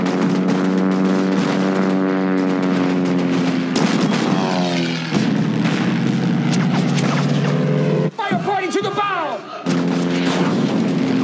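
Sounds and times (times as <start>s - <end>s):
ship guns firing at planes: 0.0s - 7.3s, 9.6s - 11.2s
heavy blasts: 0.0s - 7.7s, 9.6s - 11.2s
aircraft engine droning overhead: 0.0s - 11.2s.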